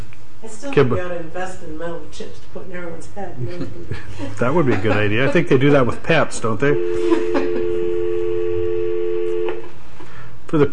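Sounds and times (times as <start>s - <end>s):
speech: 0.4s - 7.6s, 10.5s - 10.7s
laughter: 3.4s - 6.1s, 6.9s - 8.2s
telephone dial tone: 7.3s - 9.6s.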